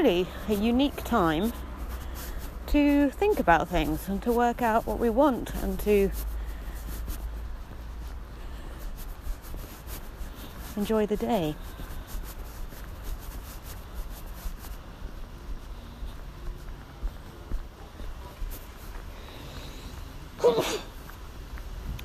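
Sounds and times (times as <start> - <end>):
speech: 0.0 - 1.7, 2.7 - 6.3, 10.8 - 11.8
low noise: 0.0 - 22.0
quiet shuffling: 0.0 - 22.0
person sneezing while out walking: 20.4 - 21.0.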